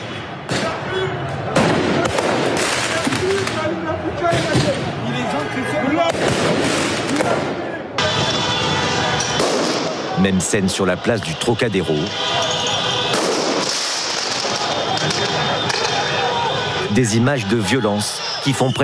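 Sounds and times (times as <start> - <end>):
crowd roar and voices during street unrest in Paris: 0.0 - 18.8
firework mortars fired at police during street unrest in Paris: 1.5 - 3.6, 6.0 - 10.2, 13.0 - 16.2
speech: 10.3 - 12.5, 17.0 - 18.8.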